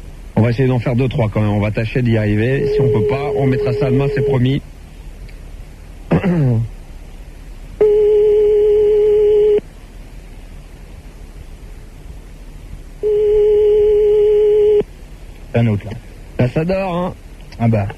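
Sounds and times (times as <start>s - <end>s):
speech: 0.4s - 4.7s, 15.6s - 17.9s
ringback tone on a telephone line during a call: 2.6s - 4.4s, 7.8s - 9.6s, 13.0s - 14.8s.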